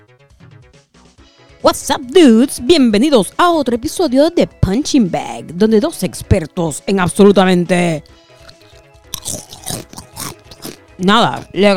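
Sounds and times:
speech: 1.6s - 8.2s, 11.0s - 11.7s
chips from a bag crunching as they are eaten: 8.0s - 11.6s.

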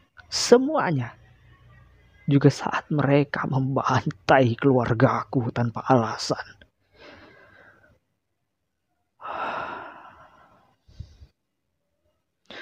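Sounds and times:
speech: 0.3s - 1.2s, 2.3s - 6.6s
deep breath drawn in: 6.9s - 8.0s, 9.2s - 11.4s.

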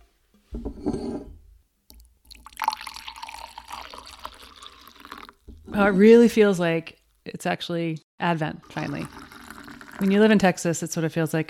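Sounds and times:
mulled wine with orange and lemon bitters poured into a glass: 2.0s - 5.5s, 8.6s - 10.5s
speech: 5.8s - 9.2s, 10.0s - 11.4s.

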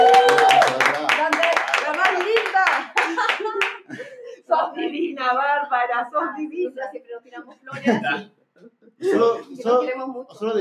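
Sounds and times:
small group clapping: 0.0s - 4.1s
laughter: 2.7s - 5.4s, 7.3s - 9.8s
speech: 5.3s - 8.4s, 9.0s - 10.5s.

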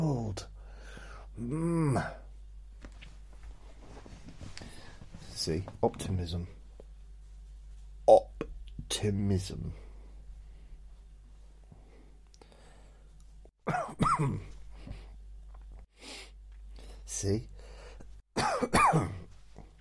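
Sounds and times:
speech: 1.4s - 2.2s, 5.5s - 6.6s, 9.0s - 9.9s, 14.2s - 14.6s, 17.2s - 17.5s, 18.6s - 19.2s
person clearing throat: 13.6s - 14.6s, 18.4s - 19.3s
person coughing: 13.6s - 14.6s, 18.4s - 19.3s.

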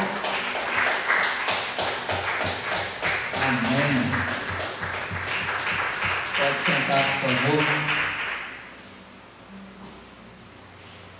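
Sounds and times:
crowd applauding: 0.0s - 8.6s
speech: 6.6s - 8.0s.

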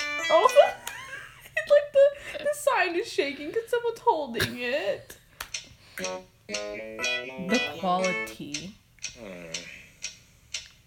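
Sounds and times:
speech: 0.3s - 0.8s, 2.7s - 5.2s, 6.0s - 9.7s
sharp even ticking like a clock: 5.5s - 10.7s.

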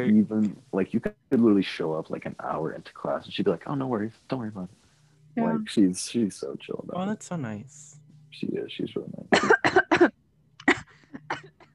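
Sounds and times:
speech: 0.0s - 4.8s, 5.4s - 10.2s
person coughing after choking on water: 9.4s - 11.5s.

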